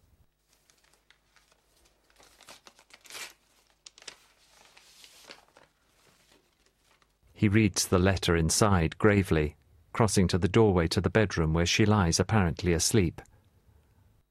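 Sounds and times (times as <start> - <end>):
large paper envelope being torn open: 0.4 - 7.2
speech: 7.4 - 13.3.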